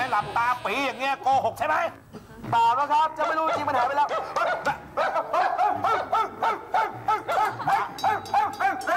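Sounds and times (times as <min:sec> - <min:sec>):
speech: 0:00.2 - 0:08.9
person imitating a dog barking: 0:03.2 - 0:08.9.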